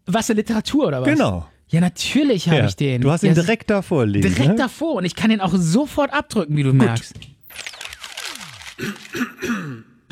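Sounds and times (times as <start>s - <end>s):
speech: 0.1s - 7.7s, 8.8s - 10.0s
man's throat clearing as a produced sound effect: 8.8s - 10.0s.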